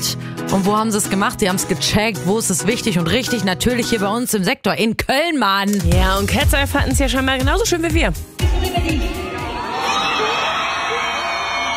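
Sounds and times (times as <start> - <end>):
speech: 0.5 - 9.2
concert crowd of fans screaming and cheering in the Köln Arena: 8.4 - 11.7.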